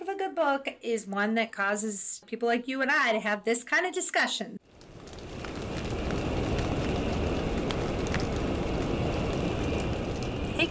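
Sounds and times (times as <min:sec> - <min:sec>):
speech: 0:00.2 - 0:04.7
rain pelting a surface: 0:04.6 - 0:10.6
wind roaring: 0:04.6 - 0:10.6.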